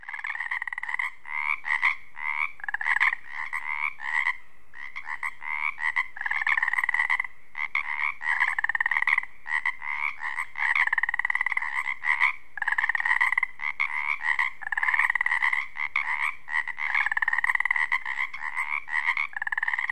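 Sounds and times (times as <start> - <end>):
Pacific tree frog chorus croaking: 0.0 - 19.9.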